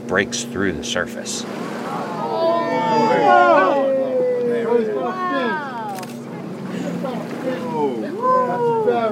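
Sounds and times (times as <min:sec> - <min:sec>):
boat engine droning on the water while following a shark: 0:00.0 - 0:09.1
speech: 0:00.1 - 0:02.0, 0:02.7 - 0:03.8
rising and falling cries and chatter: 0:01.9 - 0:09.1.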